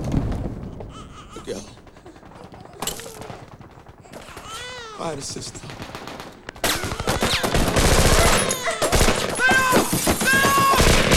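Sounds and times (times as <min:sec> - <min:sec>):
huge explosion in a film action scene: 0:00.0 - 0:01.2
heavy gunfire in a film action scene: 0:00.0 - 0:11.1
speech: 0:01.5 - 0:01.8, 0:05.0 - 0:06.0.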